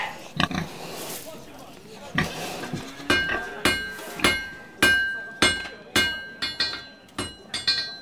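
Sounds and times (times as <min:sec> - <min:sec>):
blacksmith hammer blows forging metal tools and weapons: 0:03.0 - 0:07.9.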